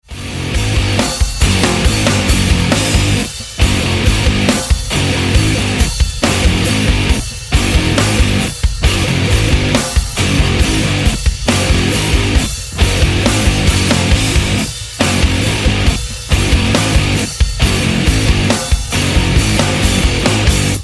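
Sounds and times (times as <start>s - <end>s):
hard guitar riff: 0.0s - 20.8s.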